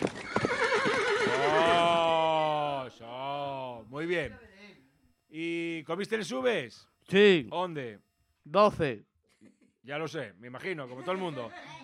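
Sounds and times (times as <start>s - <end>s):
agitated horses neighing: 0.0s - 2.8s
speech: 4.1s - 4.5s, 5.3s - 11.7s
laughter: 10.6s - 11.8s.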